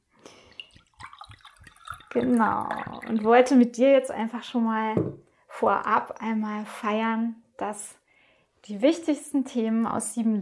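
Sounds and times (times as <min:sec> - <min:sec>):
apple juice glugging from a bottle into a glass: 0:00.4 - 0:03.5
speech: 0:02.1 - 0:08.0, 0:08.6 - 0:10.4.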